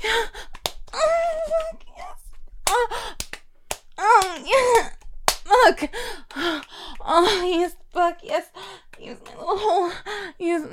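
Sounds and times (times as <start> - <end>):
hand slapping buttocks: 0.4 - 9.7
speech: 5.7 - 10.7.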